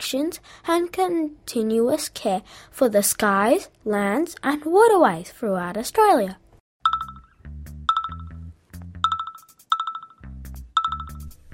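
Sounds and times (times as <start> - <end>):
speech: 0.0 - 6.4
electronic phone notification alert tones: 6.8 - 8.4, 9.0 - 10.2, 10.8 - 11.3.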